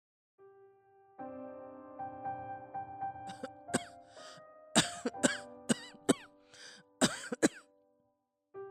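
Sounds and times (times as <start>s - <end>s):
elderly woman with a cold coughing in a room at home: 3.3s - 3.9s, 4.8s - 6.3s, 7.0s - 7.6s.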